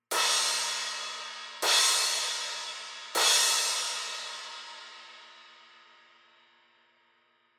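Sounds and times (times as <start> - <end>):
trash crash cymbal hits: 0.1 - 4.9.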